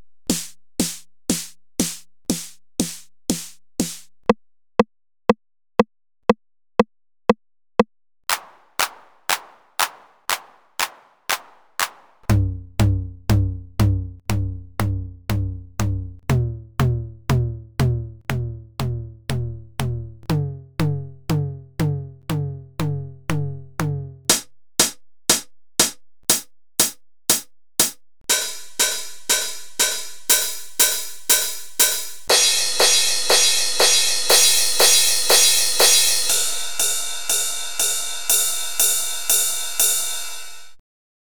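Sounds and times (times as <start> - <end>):
drum machine sounds: 0.3 - 4.1, 8.3 - 40.8.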